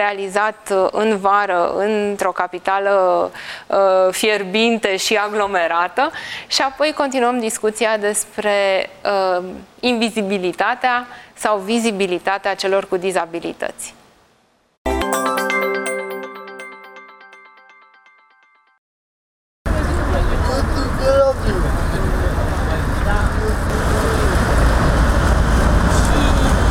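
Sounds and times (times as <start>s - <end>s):
speech: 0.0s - 14.0s
ringing musical chime: 14.9s - 18.8s
bus among passing vehicles: 19.7s - 26.6s
busy street traffic in a hot crowded capital city in summer: 19.7s - 26.6s.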